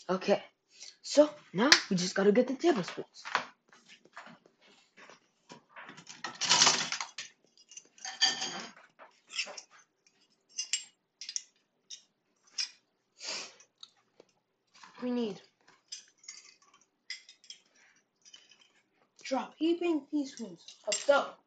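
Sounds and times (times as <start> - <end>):
speech: 0.1 - 3.5, 19.3 - 21.4
metal forks being scraped clean in a kitchen: 7.6 - 12.8, 15.9 - 18.8.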